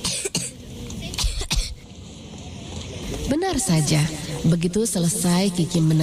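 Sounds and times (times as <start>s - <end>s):
person coughing in a harsh fit: 0.0s - 0.6s, 1.2s - 1.8s
speech: 3.4s - 6.0s.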